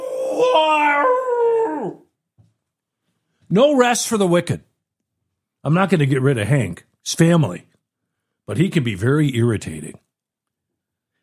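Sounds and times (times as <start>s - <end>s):
dog howling like a coyote: 0.0s - 2.1s
speech: 0.4s - 1.1s, 3.5s - 4.7s, 5.6s - 7.7s, 8.5s - 10.1s.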